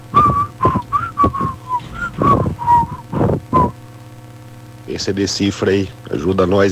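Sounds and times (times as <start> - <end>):
person whistling a rock song melody: 0.0 - 3.8
breathy puffs: 0.0 - 4.0
speech: 5.0 - 6.7.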